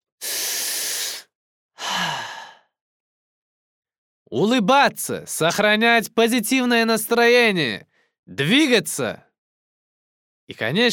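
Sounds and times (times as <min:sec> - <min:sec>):
deep breath with long airy inhale and slow exhale: 0:00.2 - 0:02.8
faintly voiced sigh: 0:01.8 - 0:02.7
speech: 0:04.3 - 0:09.2, 0:10.5 - 0:10.9.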